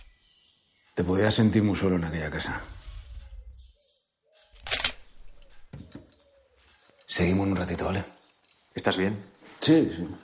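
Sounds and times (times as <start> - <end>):
speech: 1.0 - 2.8, 7.2 - 8.2, 8.8 - 10.2
camera shutter firing while photographing a dollhouse: 4.6 - 5.1.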